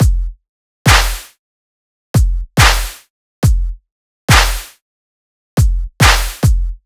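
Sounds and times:
dubstep kick drum loop: 0.0s - 1.3s, 2.2s - 4.7s, 5.6s - 6.8s
dubstep clap loop: 0.9s - 1.4s, 2.6s - 3.0s, 4.3s - 4.8s, 6.0s - 6.4s.

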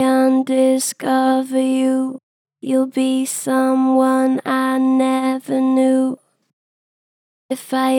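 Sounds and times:
vocals: 0.0s - 6.5s, 7.5s - 7.9s.

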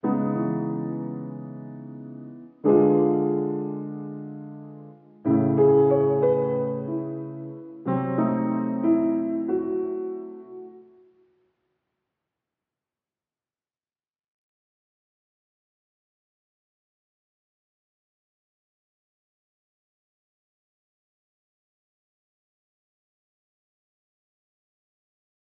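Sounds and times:
piano loop in C sharp minor: 0.0s - 11.0s.

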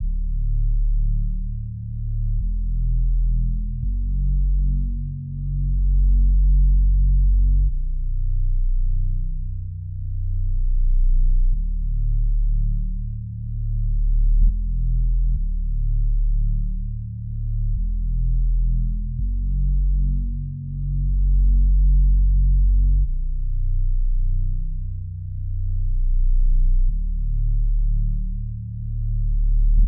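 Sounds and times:
bass loop in F sharp minor: 0.0s - 29.8s.

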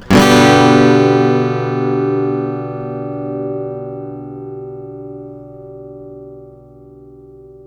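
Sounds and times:
acoustic guitar one shot in G major: 0.0s - 4.2s.

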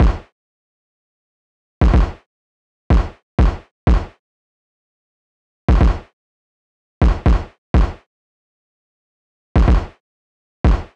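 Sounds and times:
kick drum loop at 124 BPM: 0.0s - 0.3s, 1.8s - 2.2s, 2.9s - 4.2s, 5.7s - 6.1s, 7.0s - 8.0s, 9.6s - 10.0s, 10.7s - 10.9s.

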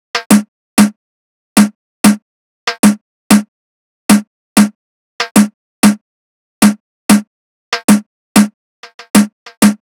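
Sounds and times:
percussion drum loop at 95 BPM: 0.2s - 1.0s, 1.6s - 3.5s, 4.1s - 6.0s, 6.6s - 9.8s.

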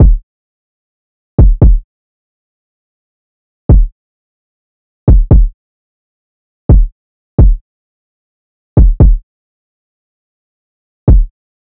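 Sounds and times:
trap drum loop with kick: 0.0s - 0.2s, 1.4s - 1.8s, 5.1s - 5.5s, 8.8s - 9.2s, 11.1s - 11.3s.

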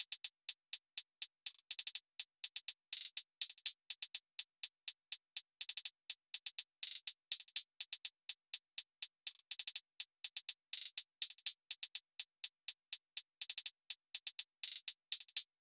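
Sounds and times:
hi-hat loop: 0.0s - 15.5s.

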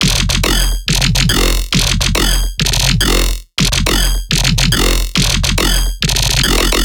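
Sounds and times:
old-school riddim bass loop in F at 140 BPM: 0.0s - 6.8s.

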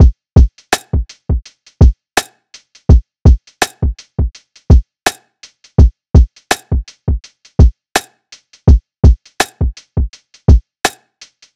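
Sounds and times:
manual lofi drum loop: 0.7s - 1.4s, 3.3s - 5.2s, 5.8s - 11.0s.

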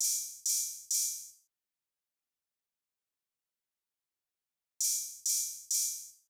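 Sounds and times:
RnB drum loop with open hi-hat: 0.0s - 1.3s, 4.8s - 6.1s.

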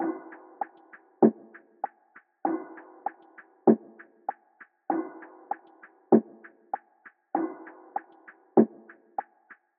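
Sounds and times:
drum loop: 0.0s - 2.2s, 2.8s - 4.1s, 4.9s - 9.6s.

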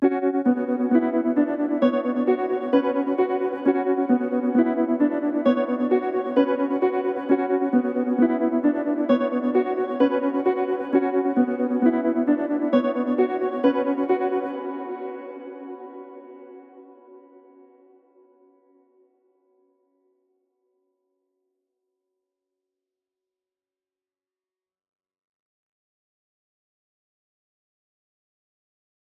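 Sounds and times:
132 BPM B minor tremolo piano trap loop: 0.0s - 16.4s.

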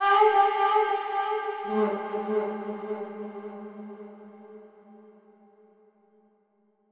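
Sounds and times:
vocals: 0.0s - 5.4s.

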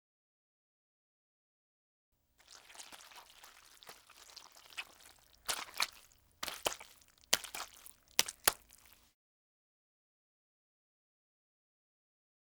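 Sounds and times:
slow footsteps squishing in mud: 2.4s - 9.0s.

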